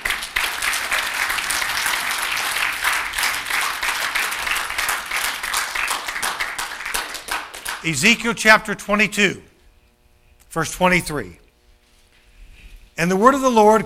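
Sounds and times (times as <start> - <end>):
audience applauding: 0.0 - 8.0
speech: 7.8 - 9.5, 10.5 - 11.4, 13.0 - 13.8.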